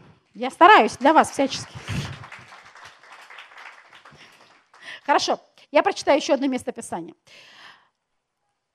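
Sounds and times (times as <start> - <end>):
speech: 0.4 - 2.0, 5.1 - 7.6
audience applause: 0.8 - 5.1.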